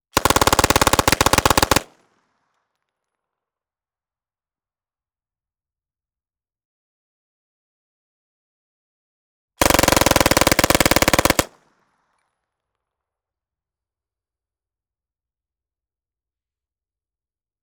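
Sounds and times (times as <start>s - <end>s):
PPSh-41 submachine gun firing long burst: 0.2s - 1.8s, 9.6s - 11.6s.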